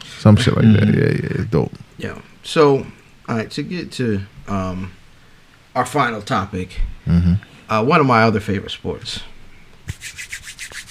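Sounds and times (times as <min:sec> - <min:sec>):
speech: 0:00.2 - 0:05.0, 0:05.8 - 0:09.3
hands rubbing together to brush off crumbs: 0:09.9 - 0:10.9.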